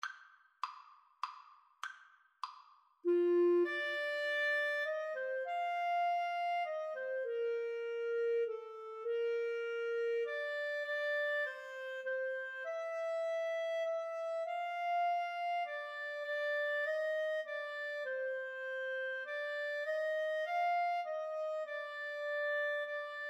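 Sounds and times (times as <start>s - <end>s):
clarinet in a duet: 3.0s - 23.2s.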